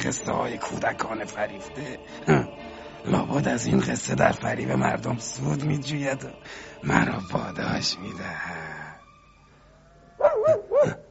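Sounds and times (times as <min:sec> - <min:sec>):
speech: 0:00.0 - 0:08.8
dog barking: 0:10.2 - 0:11.0.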